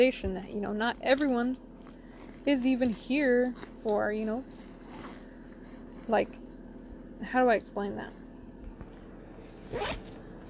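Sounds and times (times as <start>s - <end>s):
speech: 0.0s - 1.7s, 2.4s - 4.6s, 6.1s - 6.4s, 7.2s - 8.2s, 9.7s - 10.1s
clothing zipper being pulled: 2.1s - 2.6s, 3.5s - 6.4s, 9.4s - 10.4s.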